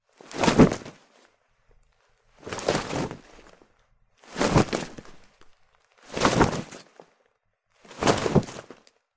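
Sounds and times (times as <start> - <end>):
leather whoosh of a passive attack: 0.3 - 1.0, 2.4 - 3.6, 4.2 - 5.3, 6.0 - 7.0, 7.8 - 8.8.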